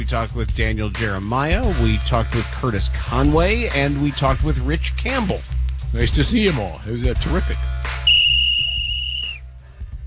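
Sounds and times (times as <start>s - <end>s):
speech: 0.0s - 8.0s
whistle blast: 8.1s - 9.4s.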